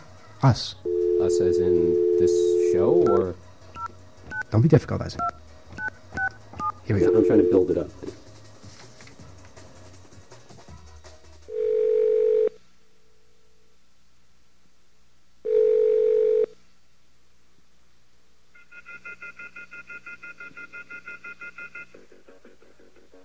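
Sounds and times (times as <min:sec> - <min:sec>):
speech: 0:00.4 - 0:03.4, 0:04.5 - 0:05.4, 0:06.9 - 0:08.2
telephone line connecting tones: 0:00.9 - 0:04.4, 0:07.0 - 0:07.8, 0:11.6 - 0:12.6, 0:15.5 - 0:16.6, 0:18.6 - 0:22.0
rapidly pulsing electronic telephone ring: 0:00.9 - 0:04.5, 0:05.2 - 0:07.9, 0:11.5 - 0:12.6, 0:15.5 - 0:16.6, 0:18.6 - 0:22.0.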